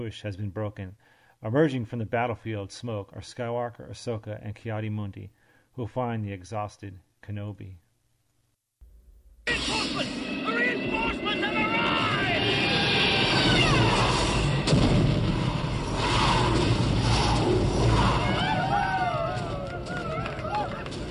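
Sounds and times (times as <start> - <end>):
speech: 0.0 - 7.8
voices shouting: 9.5 - 14.2, 17.8 - 21.0
aircraft noise: 9.5 - 14.6
heavy booms of bombs falling on enemy tanks in battle: 11.8 - 19.5
crackling gunfire in battle: 13.4 - 18.4.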